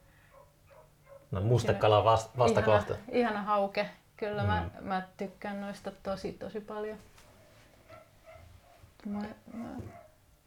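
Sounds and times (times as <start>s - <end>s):
dogs barking: 0.3s - 1.4s, 7.8s - 8.9s, 9.9s - 10.2s
speech: 1.3s - 7.2s, 9.0s - 10.0s.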